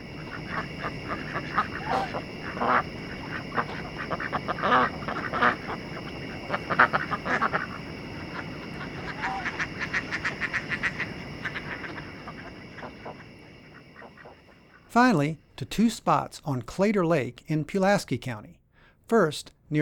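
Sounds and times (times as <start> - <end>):
large flock of ducks and geese quacking and honking: 0.0 - 14.9
steady hum: 0.0 - 19.8
speech: 15.0 - 19.8.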